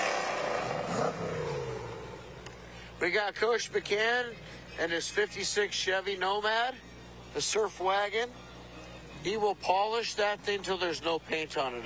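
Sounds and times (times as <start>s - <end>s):
1965 Cobra sports car engine running: 0.0s - 2.9s
speech: 3.0s - 8.4s, 9.2s - 11.8s.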